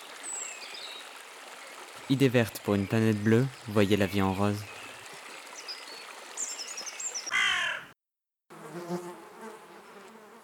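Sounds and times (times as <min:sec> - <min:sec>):
speech: 0:02.1 - 0:04.7
swarm of bees buzzing: 0:08.6 - 0:10.4.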